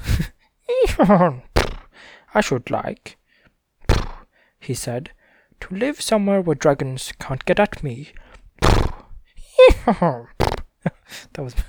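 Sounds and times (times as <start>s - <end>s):
person imitating a horse neigh: 0.1s - 1.9s, 8.6s - 10.7s
speech: 1.0s - 1.5s, 2.3s - 3.2s, 4.6s - 8.2s, 9.6s - 11.6s
breathy voice bursts: 1.6s - 2.2s, 3.9s - 4.3s, 8.6s - 10.6s.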